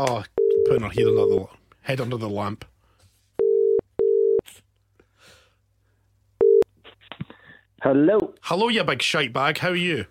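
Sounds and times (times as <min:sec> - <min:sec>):
speech: 0:00.0 - 0:02.7, 0:07.8 - 0:10.1
telephone ringback tone from an outgoing call: 0:00.4 - 0:01.4, 0:03.4 - 0:04.4, 0:06.4 - 0:06.6.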